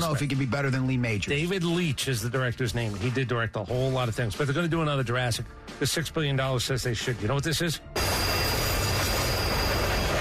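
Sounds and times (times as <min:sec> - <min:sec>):
speech: 0:00.0 - 0:08.1
faint high metallic whine from train wheels: 0:08.0 - 0:10.1
train rumbling past: 0:08.1 - 0:10.1.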